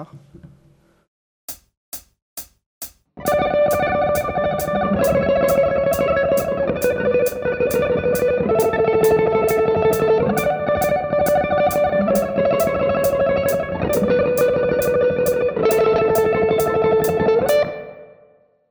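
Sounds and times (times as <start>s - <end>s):
mandolin tapping trill: 3.2s - 17.7s.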